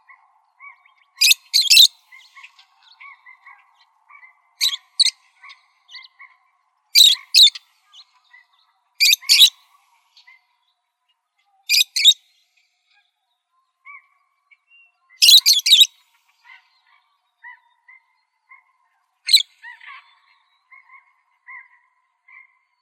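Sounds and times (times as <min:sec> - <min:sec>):
parrots giving harsh raspy screeches: 0:01.2 - 0:01.9, 0:04.6 - 0:05.1, 0:07.0 - 0:07.6, 0:09.0 - 0:09.5, 0:15.2 - 0:15.9.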